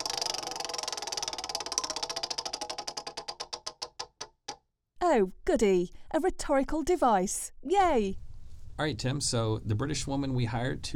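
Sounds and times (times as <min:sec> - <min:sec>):
prize wheel spinning with rapid ticking clicks: 0:00.0 - 0:04.2
speech: 0:05.1 - 0:08.2, 0:08.8 - 0:10.9.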